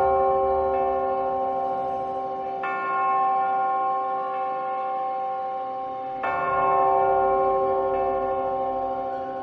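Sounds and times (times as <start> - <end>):
town hall clock bells ringing: 0.0 - 9.4.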